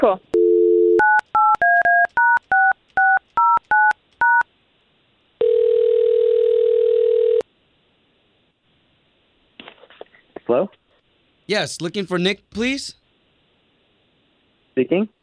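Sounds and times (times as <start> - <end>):
speech: 0.0 - 0.4, 11.5 - 13.0, 14.8 - 15.2
dual-pitched telephone keypad beeps: 0.4 - 4.4
telephone dial tone: 0.4 - 4.4, 5.4 - 7.4.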